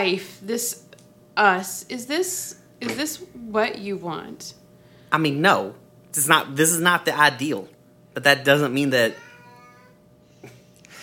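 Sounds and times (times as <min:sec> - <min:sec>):
speech: 0:00.0 - 0:09.2
cat meowing long and drawn-out: 0:09.1 - 0:10.0.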